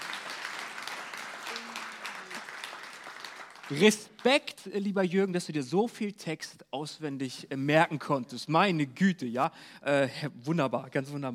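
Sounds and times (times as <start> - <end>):
audience applause: 0.0 - 4.4
speech: 3.7 - 11.3.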